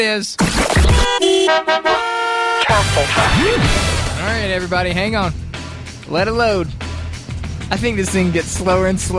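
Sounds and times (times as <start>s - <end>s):
speech: 0.0s - 5.4s, 6.1s - 6.8s, 7.7s - 9.1s
loud car horns honking: 0.9s - 3.6s.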